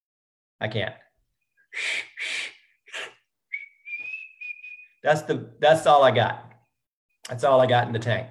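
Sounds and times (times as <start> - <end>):
speech: 0.6 - 1.0, 1.7 - 2.4, 5.0 - 6.5, 7.3 - 8.2
weak breathy whistling: 1.6 - 5.0.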